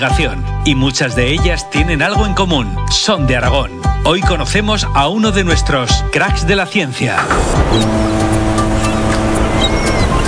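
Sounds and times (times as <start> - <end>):
speech: 0.0 - 8.3
droning boat engine hum at the seaside: 7.3 - 10.2
faint high bird cries at the seaside: 9.5 - 10.2.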